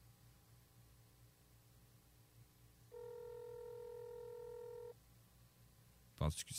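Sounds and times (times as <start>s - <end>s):
steady electronic phone ring tone on the line: 2.9s - 5.0s.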